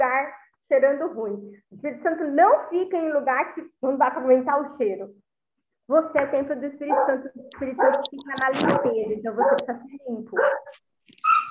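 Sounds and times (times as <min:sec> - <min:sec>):
speech: 0:00.7 - 0:05.2, 0:05.9 - 0:10.9
dog barking: 0:06.9 - 0:09.7, 0:10.3 - 0:11.5.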